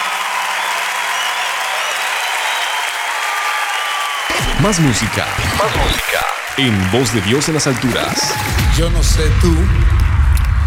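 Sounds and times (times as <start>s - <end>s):
faint whistles and cheers: 0.0s - 9.1s
crowd applauding: 0.0s - 10.6s
speech: 4.6s - 10.0s.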